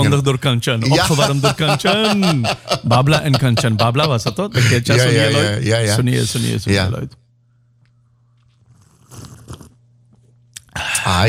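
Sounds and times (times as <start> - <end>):
speech: 0.0 - 7.2, 10.8 - 11.2
laughter: 0.8 - 5.6
slurping coffee: 8.4 - 9.8
sharp mouth noises: 8.7 - 9.8.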